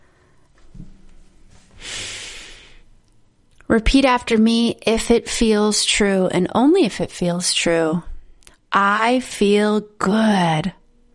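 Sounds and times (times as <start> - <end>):
deep breath in and exhale during a guided breathing exercise: 1.7 - 2.9
speech: 3.7 - 8.1, 8.7 - 10.8.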